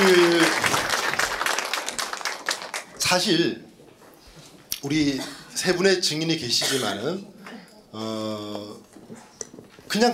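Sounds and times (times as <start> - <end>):
crowd applauding: 0.0 - 3.4
speech: 3.1 - 3.7, 4.8 - 9.2, 9.9 - 10.1.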